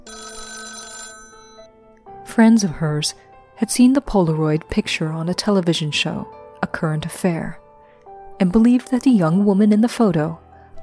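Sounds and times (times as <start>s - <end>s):
telephone ringing with a bright metallic bell tone: 0.0s - 1.7s
speech: 2.4s - 7.6s, 8.4s - 10.4s.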